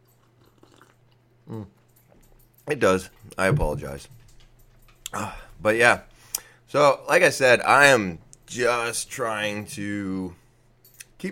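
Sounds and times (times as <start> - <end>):
faint low hum: 0.0 - 11.2
person slurping a sip of coffee: 0.2 - 1.8
speech: 1.5 - 1.8, 2.7 - 4.2, 5.1 - 6.1, 6.7 - 10.4.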